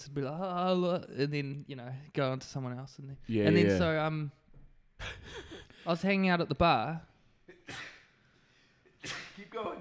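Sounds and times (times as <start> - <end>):
speech: 0.0 - 4.4, 5.0 - 7.1
person sneezing: 7.5 - 8.2, 8.9 - 9.5.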